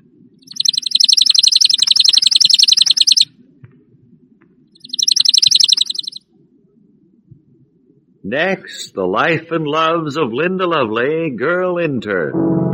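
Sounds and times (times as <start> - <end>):
chipping sparrow trilling: 0.4 - 3.3, 4.8 - 6.2
speech: 8.2 - 12.6.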